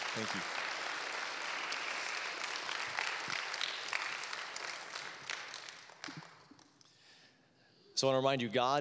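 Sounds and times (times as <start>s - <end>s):
audience applause: 0.0s - 6.5s
speech: 0.2s - 0.7s, 8.0s - 8.7s.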